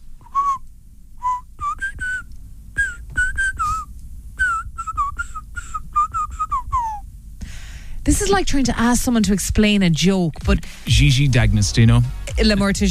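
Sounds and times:
faint low rumble: 0.0 - 12.9
person whistling a bouncy tune: 0.3 - 0.6, 1.2 - 7.0
speech: 8.1 - 12.9.

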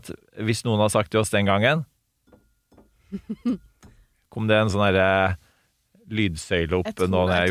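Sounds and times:
speech: 0.0 - 1.9, 3.1 - 3.7, 4.3 - 5.4, 6.1 - 7.4
drinking glass clinking: 2.2 - 3.0.

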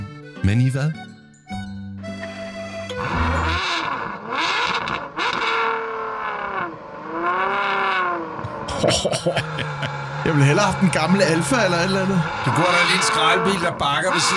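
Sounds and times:
speech: 0.4 - 1.1, 8.8 - 14.3
powerful supercar engine starting and revving: 2.9 - 8.7, 9.5 - 14.3
laughter: 8.5 - 11.0.

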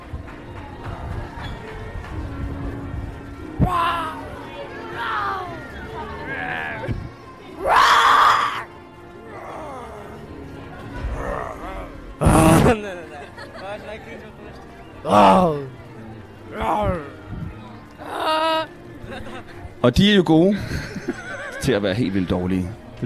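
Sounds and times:
laughter: 0.0 - 23.0
murmuring voices in a park: 0.0 - 23.0
outdoor noise in a park: 0.0 - 23.0
several people in a park imitating a lion's roar: 3.6 - 7.0, 7.6 - 10.4, 11.0 - 12.8, 15.0 - 15.8
speech: 19.9 - 23.0.

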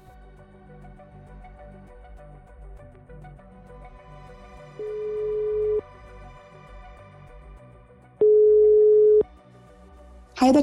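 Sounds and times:
ringback tone of an outgoing phone call to a police lawyer: 4.8 - 5.8, 8.2 - 9.2
speech: 10.5 - 10.6.

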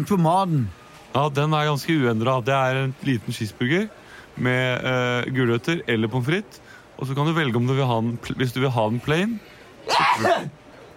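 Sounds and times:
speech: 0.0 - 10.6
person sneezing: 9.9 - 10.6.

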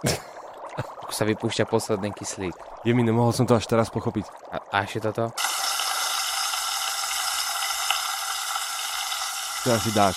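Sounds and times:
speech: 0.0 - 0.2, 1.1 - 5.6, 9.6 - 10.1
bacon sizzling in a frying pan: 5.4 - 10.1.

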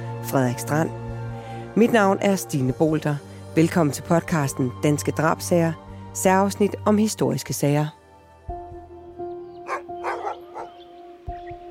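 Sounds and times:
speech: 0.3 - 1.0, 1.8 - 8.0
hunting dogs barking loudly and insistently: 9.6 - 10.8.

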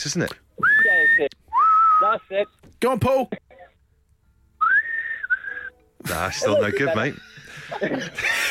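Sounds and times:
speech: 0.0 - 1.4, 2.0 - 3.4, 6.0 - 8.4
man whistling: 0.6 - 2.2, 4.6 - 5.8
laughter: 6.1 - 8.4.

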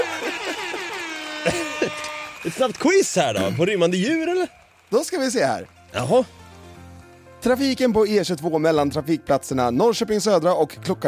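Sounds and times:
air horn honk sound effect: 0.0 - 3.4
laughter: 0.0 - 4.4
speech: 2.4 - 6.4, 7.4 - 11.0.

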